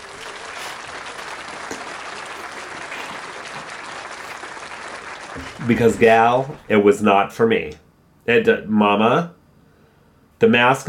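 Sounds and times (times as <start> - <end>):
crowd applause: 0.0 - 6.7
speech: 5.4 - 9.4, 10.4 - 10.8.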